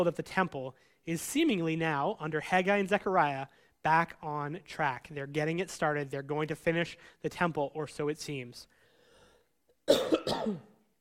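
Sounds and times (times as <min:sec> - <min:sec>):
speech: 0:00.0 - 0:08.8, 0:09.9 - 0:10.7
hoarse cough from an ill person: 0:09.8 - 0:10.8.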